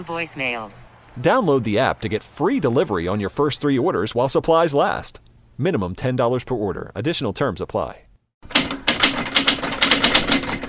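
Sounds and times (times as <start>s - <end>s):
speech: 0.0s - 8.6s
typewriter keys clacking in a typewriter shop: 8.5s - 10.6s.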